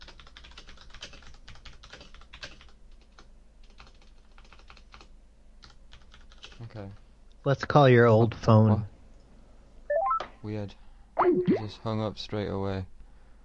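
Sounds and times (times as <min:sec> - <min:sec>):
typing on a computer keyboard: 0:00.0 - 0:07.0
speech: 0:06.7 - 0:08.9, 0:10.4 - 0:13.0.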